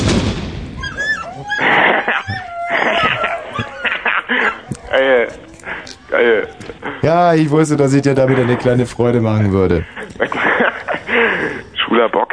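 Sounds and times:
single loud gunshot: 0.0 - 0.8
whining yelping cries and voice-like sounds: 0.8 - 8.7
laughter: 1.5 - 11.7
speech: 6.2 - 10.2.

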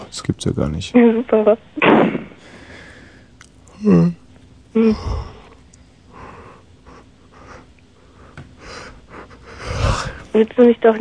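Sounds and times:
speech: 0.1 - 2.1, 3.8 - 4.2, 4.8 - 5.3, 10.4 - 10.9
person yawning on the radio: 3.8 - 4.2, 4.8 - 5.6.

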